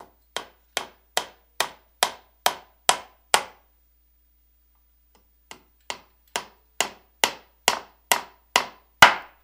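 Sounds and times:
hammering nail into wood: 0:00.0 - 0:03.6, 0:05.5 - 0:09.4.

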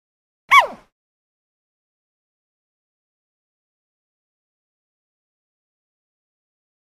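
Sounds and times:
panda barking: 0:00.5 - 0:00.9.

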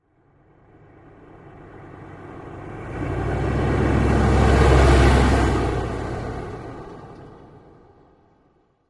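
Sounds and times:
Humvee passing by accelerating: 0:00.6 - 0:07.3.

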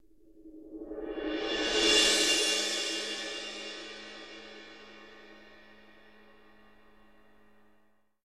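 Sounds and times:
stinger cymbal roll: 0:00.9 - 0:07.2.

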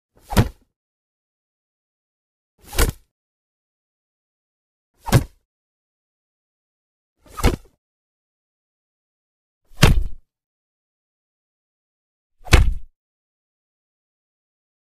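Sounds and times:
punches and kicks hitting: 0:00.2 - 0:00.6, 0:05.0 - 0:05.4, 0:09.8 - 0:10.2, 0:12.4 - 0:12.9.

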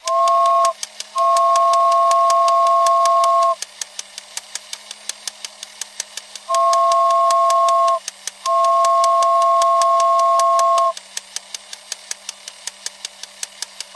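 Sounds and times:
baby toy train whistle: 0:00.0 - 0:03.6, 0:06.4 - 0:11.0.

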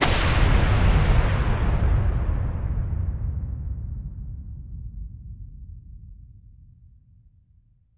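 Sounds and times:
low missile launch: 0:00.0 - 0:05.2.

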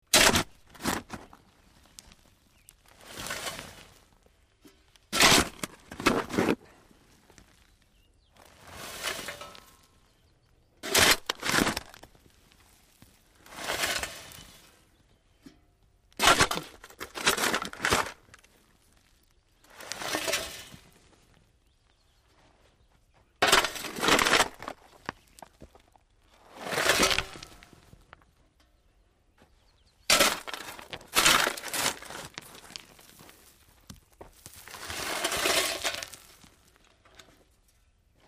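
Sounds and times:
shovel digging dirt slowly: 0:00.0 - 0:01.4, 0:02.9 - 0:04.0, 0:04.7 - 0:06.6, 0:08.5 - 0:09.8, 0:10.8 - 0:12.2, 0:13.4 - 0:14.7, 0:16.2 - 0:18.4, 0:19.7 - 0:20.9, 0:23.4 - 0:25.4, 0:26.4 - 0:27.8, 0:30.0 - 0:33.5, 0:34.4 - 0:36.5.

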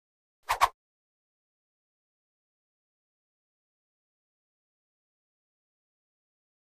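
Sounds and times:
fencing sword swish: 0:00.5 - 0:00.8.

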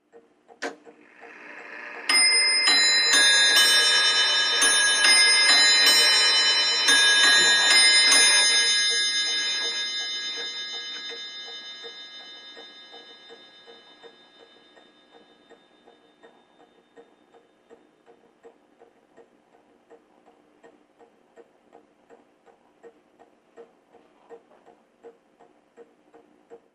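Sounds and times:
old mantel clock striking: 0:00.6 - 0:17.4.

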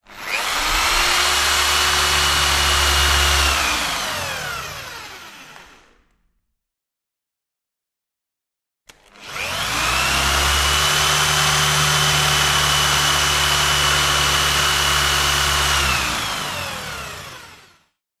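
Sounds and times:
hand drills drilling: 0:00.0 - 0:06.1, 0:08.9 - 0:17.9.

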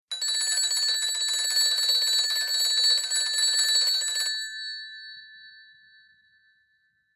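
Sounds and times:
old British pulse rotary desk telephone ringing: 0:00.1 - 0:05.7.

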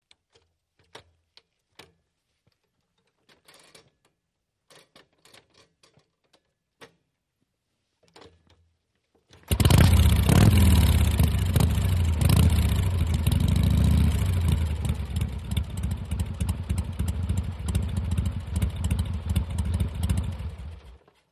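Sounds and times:
Harley motorcycle kick start: 0:09.5 - 0:21.2.

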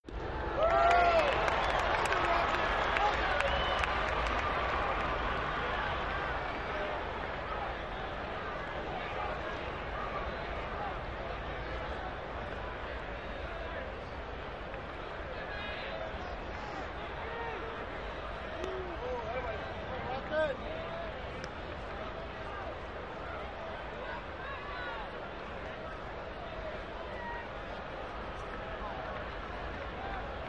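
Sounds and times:
arena crowd oohing and cheering at a sports arena: 0:00.1 - 0:30.4.

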